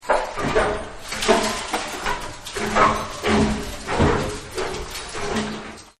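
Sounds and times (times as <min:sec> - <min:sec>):
crunching: 0:00.0 - 0:05.9.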